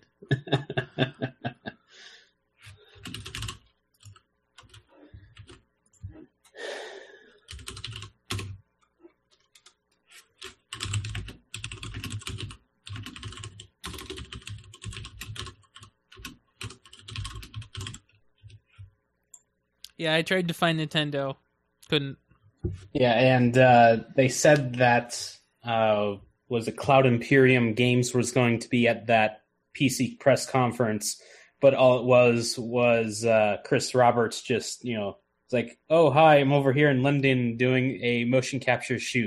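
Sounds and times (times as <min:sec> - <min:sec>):
brief soft chuckle: 0:00.2 - 0:01.8
typing on mechanical keyboard switches on a blank keyboard: 0:03.0 - 0:05.6, 0:07.5 - 0:08.6, 0:09.4 - 0:18.8
speech: 0:20.0 - 0:39.2.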